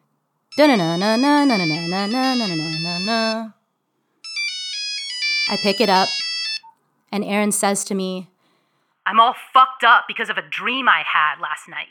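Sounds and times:
cell phone electronic ringtone tune: 0.5 - 3.5, 4.2 - 6.7
person humming a cell phone ringtone melody: 0.5 - 3.6, 5.5 - 6.1
speech: 0.6 - 3.6, 5.5 - 6.2, 7.1 - 8.3, 9.0 - 11.8.

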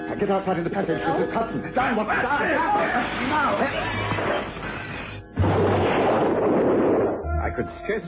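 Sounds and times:
speech: 0.2 - 4.1, 7.6 - 8.0
parcel bomb explosion: 5.4 - 7.3.

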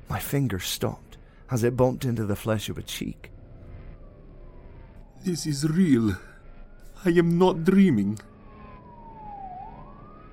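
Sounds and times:
speech: 0.1 - 3.4, 5.2 - 6.3, 7.0 - 8.3
police siren wailing: 3.7 - 10.3.

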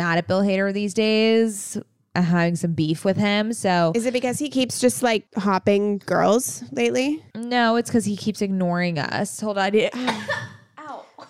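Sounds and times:
speech: 0.0 - 10.5
woman coughing: 9.9 - 11.2
woman sneezing: 10.0 - 11.2.

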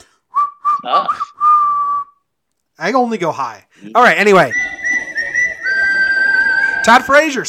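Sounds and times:
person whistling a short tune: 0.3 - 2.2, 4.4 - 7.2
speech: 0.8 - 1.3, 2.8 - 4.6, 6.8 - 7.4.

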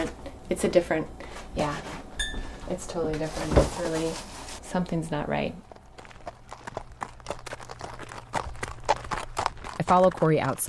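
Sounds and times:
speech: 0.0 - 5.7, 9.9 - 10.6
horse hooves clomping on a hard hollow surface: 2.5 - 10.6.

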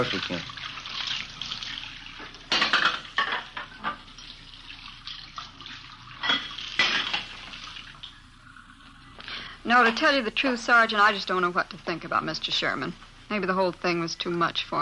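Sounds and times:
speech: 0.0 - 0.6, 9.7 - 14.8
water running in a kitchen sink: 0.0 - 14.8
dishes clattering while being washed in a kitchen sink: 2.2 - 4.4, 6.1 - 7.5.

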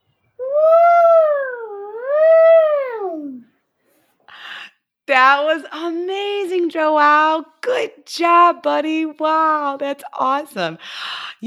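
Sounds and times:
child imitating an elephant trumpeting: 0.4 - 3.5
speech: 5.2 - 11.4.

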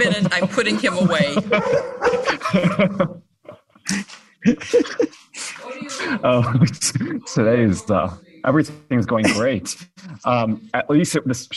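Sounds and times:
speech: 0.0 - 3.2, 6.2 - 11.5
laughter: 0.0 - 8.2, 9.0 - 10.7
dog barking and whining: 1.5 - 2.4.

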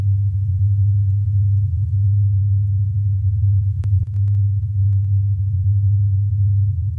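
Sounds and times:
simulated low-frequency Taos hum drone: 0.0 - 6.9
faint clicks: 3.7 - 5.2.

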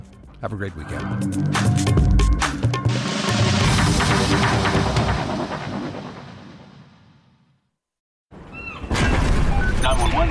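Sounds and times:
speech: 0.4 - 3.1, 4.3 - 6.2
explosion on a cruise ship with crackling bursts and rumbling roar: 2.9 - 7.6, 8.9 - 10.3.

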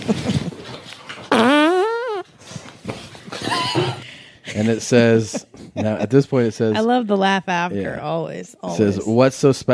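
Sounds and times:
loud drawn-out fart: 1.3 - 2.3
speech: 4.6 - 9.7.

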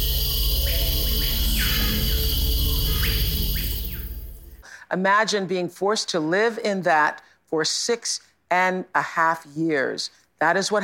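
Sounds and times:
Amazon rainforest insects droning: 0.0 - 4.6
speech: 4.9 - 10.8.

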